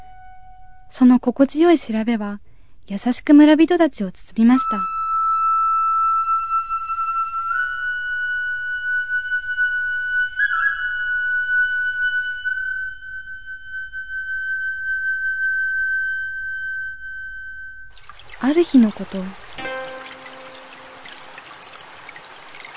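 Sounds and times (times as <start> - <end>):
flute playing a gentle melody on a riverbank at night: 0.0 - 0.9, 4.4 - 18.0, 18.9 - 22.0
speech: 0.9 - 4.9, 18.6 - 19.4.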